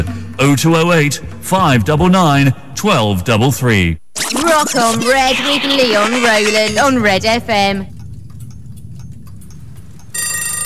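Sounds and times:
speech: 0:00.0 - 0:08.0
clocks ticking: 0:00.0 - 0:10.6
clock alarm bells ringing: 0:05.9 - 0:10.6.

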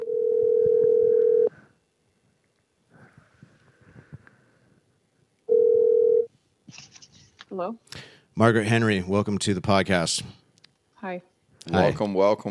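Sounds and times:
telephone ring tones on the line: 0:00.0 - 0:01.5, 0:05.5 - 0:06.3
speech: 0:07.5 - 0:10.4, 0:11.0 - 0:12.5.

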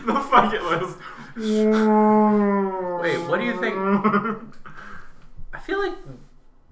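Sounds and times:
laughter: 0:00.0 - 0:05.2
speech: 0:00.4 - 0:04.5
whale call: 0:01.4 - 0:04.2.

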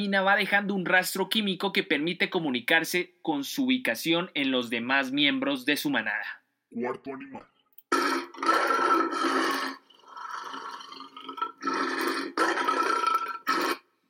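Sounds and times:
speech: 0:00.0 - 0:07.5
lion roaring: 0:07.9 - 0:09.8, 0:10.4 - 0:13.8.

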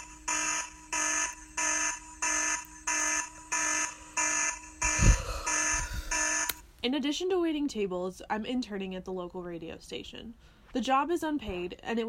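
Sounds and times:
electronic alarm clock beeping: 0:00.0 - 0:06.6
speech: 0:06.8 - 0:12.0.

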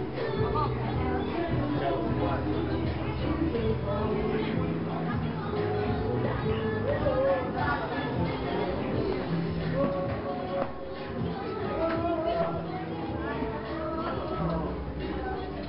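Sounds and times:
dense crowd of voices chattering on an old town street: 0:00.0 - 0:15.6
music from bars along a canal-side old town street in Lijiang, China: 0:00.0 - 0:15.6.

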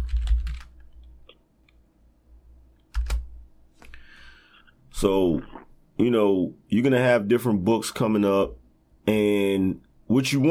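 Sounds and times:
keystrokes on a computer keyboard: 0:00.0 - 0:01.2, 0:02.9 - 0:03.3
low steady hum: 0:00.0 - 0:10.4
speech: 0:05.0 - 0:10.4.

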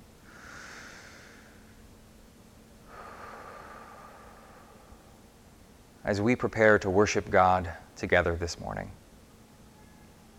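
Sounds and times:
deep breath: 0:00.2 - 0:01.9, 0:02.8 - 0:05.4
speech: 0:06.1 - 0:09.0.

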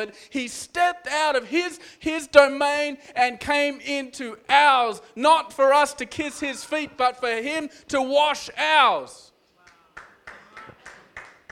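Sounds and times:
speech: 0:00.0 - 0:09.3
audience member clapping: 0:09.6 - 0:11.5.

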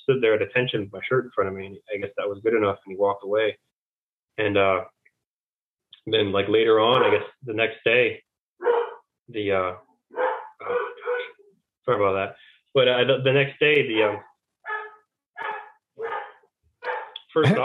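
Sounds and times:
speech: 0:00.1 - 0:03.7, 0:04.4 - 0:05.0, 0:06.0 - 0:08.7, 0:09.3 - 0:10.8, 0:11.9 - 0:14.3, 0:17.3 - 0:17.6
dogs barking: 0:06.8 - 0:07.3, 0:08.6 - 0:09.1, 0:10.1 - 0:11.4, 0:13.9 - 0:17.2.

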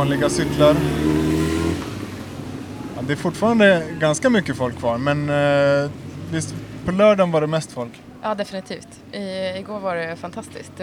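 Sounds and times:
speech: 0:00.0 - 0:01.3, 0:03.0 - 0:10.8
motorcycle engine humming and moving off: 0:00.0 - 0:07.1.

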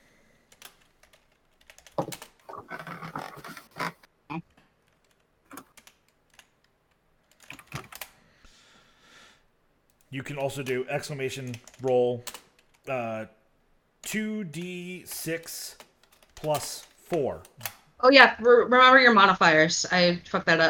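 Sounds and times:
fingers typing on a computer keyboard: 0:00.5 - 0:02.5, 0:04.8 - 0:08.1, 0:10.0 - 0:13.0
speech: 0:10.2 - 0:13.4, 0:14.1 - 0:15.8, 0:16.4 - 0:20.6.

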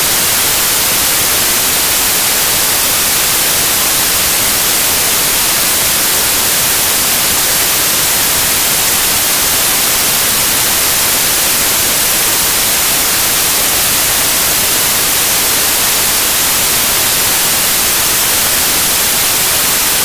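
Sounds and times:
white noise hiss: 0:00.0 - 0:20.0.

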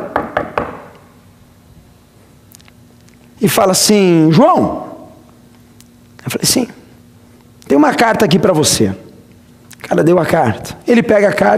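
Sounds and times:
knocking on a wooden door: 0:00.0 - 0:00.9
speech: 0:03.4 - 0:04.9, 0:06.2 - 0:06.8, 0:07.7 - 0:09.0, 0:09.8 - 0:11.5.

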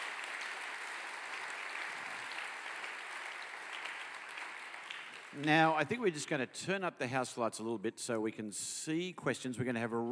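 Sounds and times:
crowd applauding teachers: 0:00.0 - 0:06.0
speech: 0:05.4 - 0:10.1.

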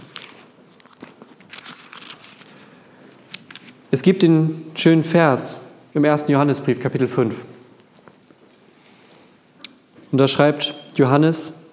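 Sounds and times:
book pages flipping quickly: 0:00.0 - 0:03.9
speech: 0:03.9 - 0:07.5, 0:10.1 - 0:11.6.

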